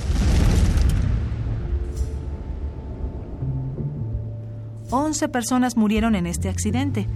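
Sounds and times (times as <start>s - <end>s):
faint debris-like crackle: 0.0s - 3.4s
heavy explosion: 0.0s - 3.5s
speech: 4.9s - 7.1s.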